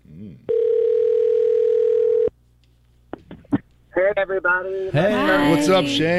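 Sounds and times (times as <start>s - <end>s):
telephone dial tone of outgoing call: 0.5s - 2.3s
speech: 4.0s - 6.1s.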